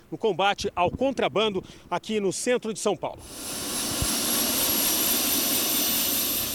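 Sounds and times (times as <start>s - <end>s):
speech: 0.1s - 3.7s
helicopter turbine engine and rotor roaring: 3.6s - 6.5s.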